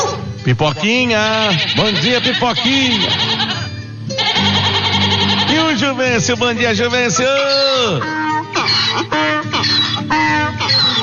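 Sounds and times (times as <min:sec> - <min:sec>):
speech: 0:00.4 - 0:03.6, 0:05.7 - 0:08.2
parrot making loud raspy voice-like calls: 0:01.3 - 0:05.8, 0:07.0 - 0:11.0.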